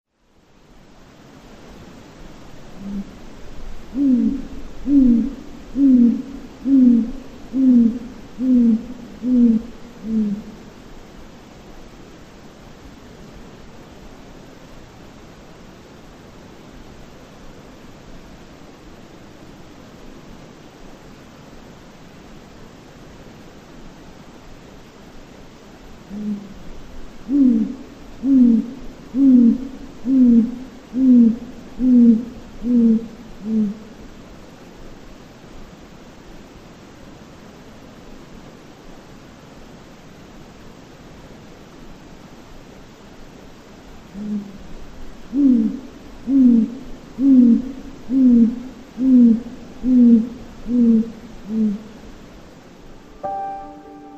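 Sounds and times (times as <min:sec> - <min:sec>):
great grey owl calling: 0:02.8 - 0:03.2, 0:03.9 - 0:10.6, 0:26.1 - 0:26.6, 0:27.3 - 0:33.9, 0:44.2 - 0:44.6, 0:45.3 - 0:51.9.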